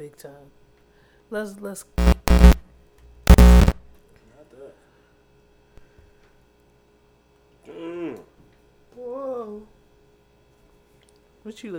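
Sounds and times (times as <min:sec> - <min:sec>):
speech: 0:00.0 - 0:00.6, 0:01.3 - 0:02.2, 0:11.4 - 0:11.7
static crackle from a faulty cord: 0:02.0 - 0:02.6, 0:03.3 - 0:03.9.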